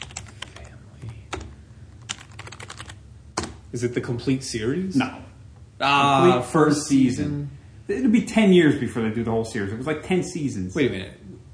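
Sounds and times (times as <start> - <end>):
typing on a computer keyboard entering a search into a shopping website: 0.0 - 0.7, 1.3 - 3.6
speech: 3.7 - 11.2.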